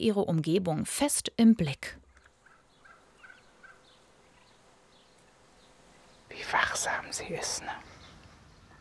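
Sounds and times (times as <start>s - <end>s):
speech: 0.0s - 2.0s, 6.4s - 7.9s
foster turkey hen clucking to lure her chicks in Köhlau: 2.1s - 4.6s.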